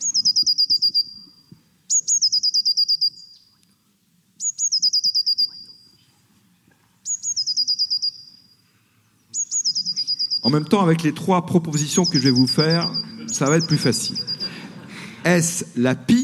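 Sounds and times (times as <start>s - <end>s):
blue tit singing: 0.0s - 3.6s, 4.4s - 6.1s, 7.0s - 14.5s
speech: 10.5s - 14.3s, 15.2s - 16.2s
laughter: 12.6s - 15.6s.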